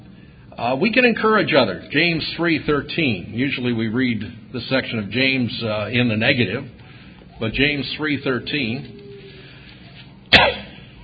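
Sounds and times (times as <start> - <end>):
speech: 0.6 - 6.8, 7.4 - 9.0
sharp cough: 10.3 - 10.9.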